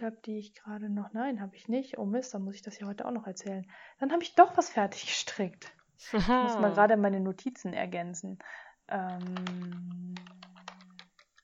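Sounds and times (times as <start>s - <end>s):
speech: 0.0s - 10.5s
typing on a computer keyboard: 9.1s - 11.4s.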